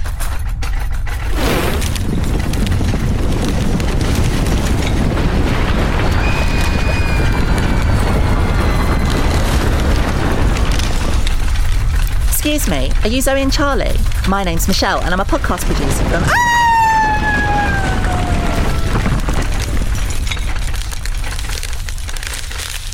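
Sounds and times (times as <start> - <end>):
hell-portal opening effect roaring rumble: 0.0 - 22.9
thin high whistling tone: 6.1 - 9.2
speech: 12.6 - 16.5.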